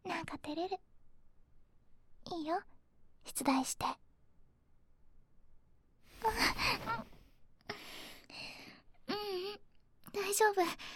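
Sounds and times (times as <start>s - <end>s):
speech: 0.5s - 0.9s, 2.4s - 4.0s, 6.2s - 7.1s, 10.1s - 10.9s
soft airy breaths blown close to the ear: 6.1s - 8.9s.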